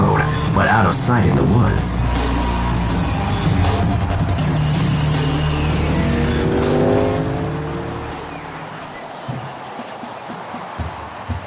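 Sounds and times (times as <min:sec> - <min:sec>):
speech: 0:00.8 - 0:02.2
motorcycles racing past on a road beside woods: 0:02.3 - 0:08.9.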